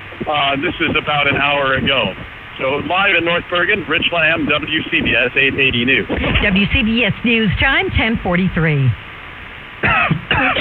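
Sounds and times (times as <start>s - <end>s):
speech: 0.2s - 9.0s, 9.8s - 10.6s
loud harsh voiced coughs: 9.8s - 10.6s.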